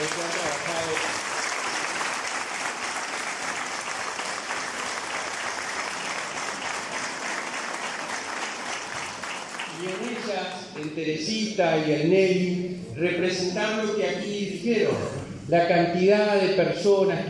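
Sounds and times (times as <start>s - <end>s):
crowd applauding: 0.0s - 11.0s
speech: 10.8s - 17.2s.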